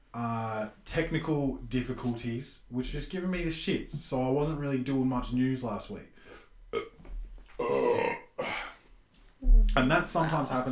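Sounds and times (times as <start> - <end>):
speech: 0.2 - 6.1, 9.8 - 10.7
person burping: 6.7 - 7.0, 7.6 - 8.7.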